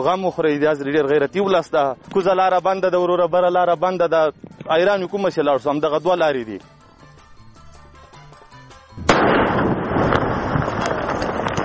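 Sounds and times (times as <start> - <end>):
speech: 0.0 - 6.8
landmine detonated by police in the Maiwand district of Kandahar: 9.0 - 11.6.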